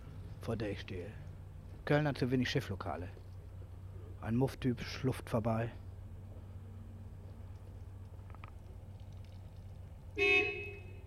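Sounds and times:
low steady street hum: 0:00.0 - 0:11.0
speech: 0:00.4 - 0:03.2, 0:04.2 - 0:05.8
car horn honk: 0:10.2 - 0:11.0.

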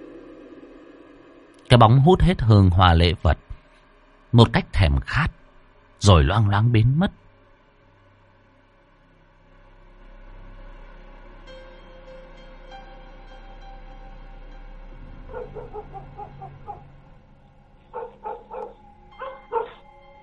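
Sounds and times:
speech: 0:01.7 - 0:03.5, 0:04.3 - 0:05.4, 0:06.0 - 0:07.2
dogs barking at night in a village: 0:15.1 - 0:17.1, 0:17.8 - 0:19.9.

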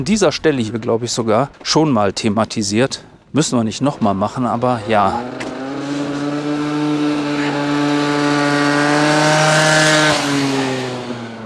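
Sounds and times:
speech: 0:00.0 - 0:05.6
tuned scooter engine revving hard: 0:04.0 - 0:11.4.

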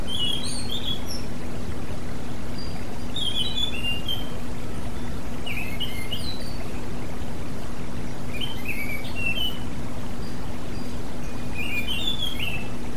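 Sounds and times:
oriental magpie-robin singing whistled slurred notes: 0:00.0 - 0:01.3, 0:02.5 - 0:04.4, 0:05.0 - 0:06.8, 0:08.3 - 0:12.8
continuous low hum and hiss: 0:00.0 - 0:12.9.

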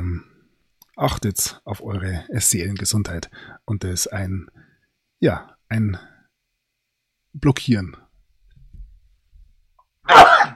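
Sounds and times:
speech: 0:01.0 - 0:06.1, 0:07.4 - 0:08.0, 0:10.1 - 0:10.5
person sneezing: 0:10.1 - 0:10.5.

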